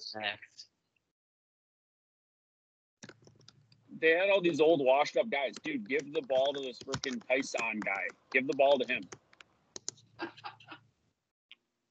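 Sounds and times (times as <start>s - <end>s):
speech: 0.0s - 0.7s, 4.0s - 9.2s, 10.2s - 10.6s
loud computer keyboard typing: 3.0s - 10.1s.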